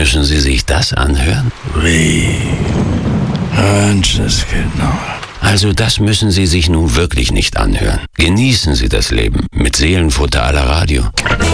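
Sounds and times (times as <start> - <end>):
loud rain hissing: 0.0 - 5.8
speech: 0.0 - 11.5
low rumble of thunder: 1.4 - 5.5.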